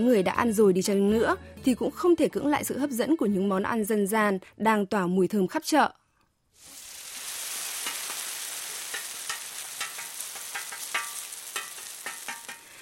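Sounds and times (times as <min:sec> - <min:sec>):
speech: 0:00.0 - 0:06.0
millet-flour pancakes with black bean filling frying in hot oil at a market: 0:06.5 - 0:12.8.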